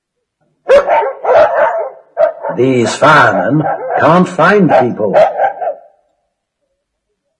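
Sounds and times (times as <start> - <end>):
dog barking with drawn-out woofs: 0.7 - 2.7, 3.3 - 6.0
speech: 2.6 - 5.3.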